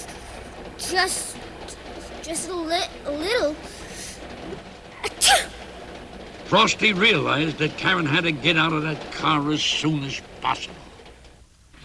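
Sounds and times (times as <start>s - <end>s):
speech: 0.9s - 1.5s, 2.2s - 3.8s, 6.5s - 10.9s
sneeze from someone shivering with cold: 5.0s - 5.6s.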